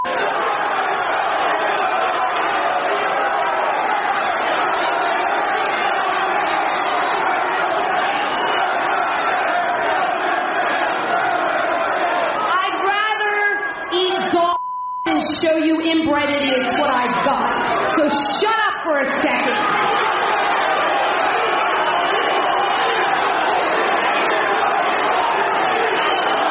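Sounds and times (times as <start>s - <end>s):
large wrestling arena crowd cheering and shouting: 0.0s - 26.4s
single amplified voice: 12.4s - 19.8s.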